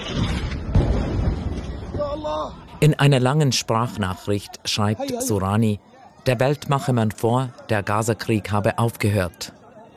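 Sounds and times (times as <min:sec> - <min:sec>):
explosion booming at night in a city: 0:00.0 - 0:02.6
speech: 0:02.2 - 0:09.9.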